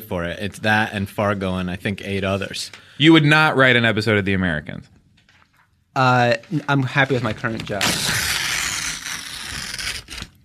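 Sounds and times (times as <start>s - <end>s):
speech: 0.0s - 5.0s, 6.0s - 8.2s
paper contract being torn: 7.0s - 10.4s.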